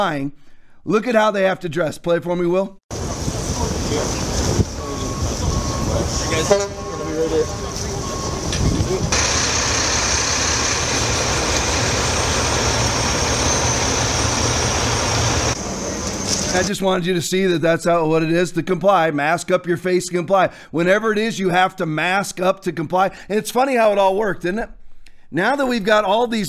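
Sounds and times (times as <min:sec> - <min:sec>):
speech: 0:00.0 - 0:02.8, 0:03.9 - 0:04.6, 0:06.0 - 0:07.8, 0:16.5 - 0:26.4
tow truck engines idling in a played video: 0:02.9 - 0:16.7
gusting wind noise across the microphone: 0:03.0 - 0:09.2.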